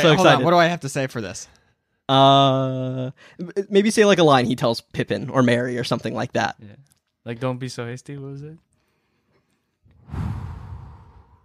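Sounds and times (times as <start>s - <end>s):
speech: 0.0s - 8.7s
deep dramatic inhale: 10.0s - 11.4s.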